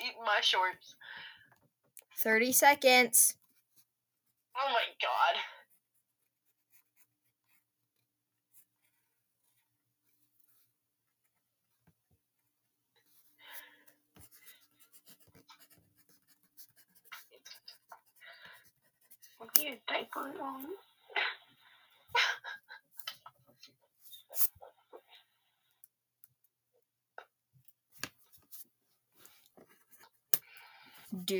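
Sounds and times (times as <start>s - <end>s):
speech: 0.3s - 1.0s, 2.2s - 3.4s, 4.6s - 5.6s, 19.4s - 21.4s, 31.1s - 31.3s
pencils scratching on paper while people draw: 14.2s - 20.7s.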